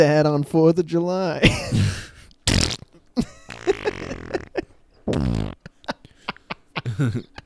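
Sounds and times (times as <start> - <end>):
speech: 0.0 - 2.0, 7.0 - 7.4
fart sounds: 2.4 - 5.7.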